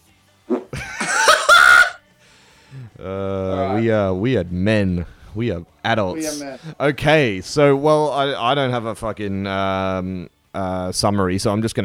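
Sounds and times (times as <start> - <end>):
loud raspy fart with rough sputters: 0.5 - 0.8
laughter: 0.5 - 2.0
speech: 3.8 - 11.8.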